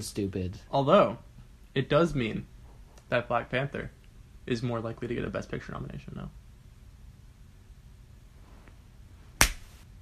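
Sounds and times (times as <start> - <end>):
speech: 0.0 - 2.5, 3.1 - 6.4
sharp punch to the face: 9.4 - 9.7.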